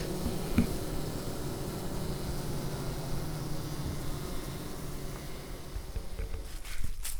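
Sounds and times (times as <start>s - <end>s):
many bees buzzing together: 0.0s - 7.0s.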